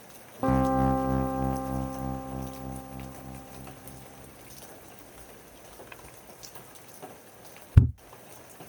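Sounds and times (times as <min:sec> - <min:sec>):
low resonant tone: 0:00.4 - 0:04.8
soft steady rain: 0:00.4 - 0:08.6.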